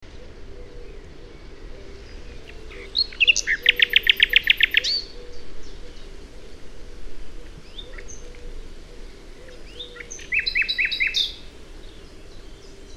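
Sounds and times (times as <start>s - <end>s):
Common nightingale Luscinia megarhynchos song with repeated chirps and whistles: 0.1s - 6.1s, 9.3s - 12.9s.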